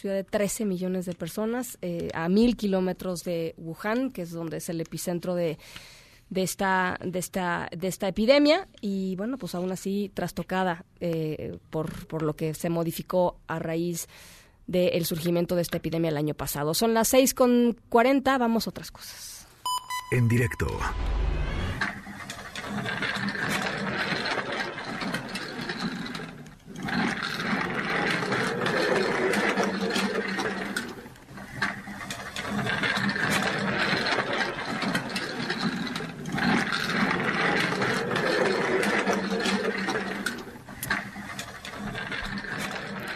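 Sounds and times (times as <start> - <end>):
speech: 0.0 - 19.4, 20.1 - 21.4
wheelchair rolling with mechanical whirring and rattling: 21.4 - 43.1.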